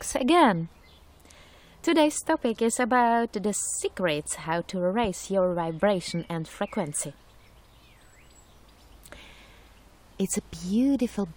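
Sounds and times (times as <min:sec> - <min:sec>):
speech: 0:00.1 - 0:00.8, 0:01.8 - 0:07.2, 0:10.2 - 0:11.3
faint birds singing outdoors: 0:00.6 - 0:01.6, 0:04.3 - 0:11.3.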